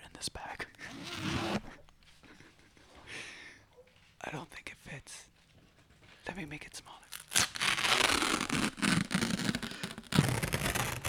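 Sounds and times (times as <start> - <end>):
paper ripping: 7.2 - 11.0.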